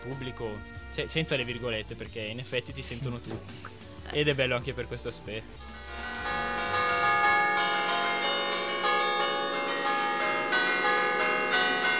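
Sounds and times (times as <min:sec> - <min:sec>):
speech: 0:00.0 - 0:05.8
church bells rung from a bell tower playing a waltz or mazurka tune: 0:05.6 - 0:11.9.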